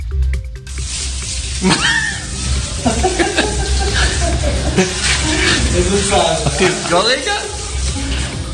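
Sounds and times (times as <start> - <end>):
water running from opened faucet at a military base: 0.4 - 8.5
person laughing: 1.6 - 6.9
people talking: 3.8 - 8.2.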